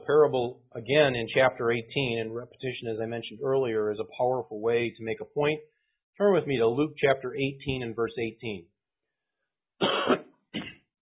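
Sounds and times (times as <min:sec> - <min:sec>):
speech: 0:00.1 - 0:08.7
preacher coughing during a sermon: 0:09.8 - 0:10.8.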